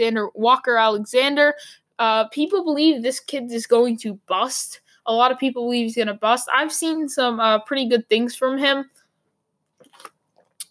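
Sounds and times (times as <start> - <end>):
speech: 0.0 - 9.0
sipping water with wet mouth slurps: 9.8 - 10.6.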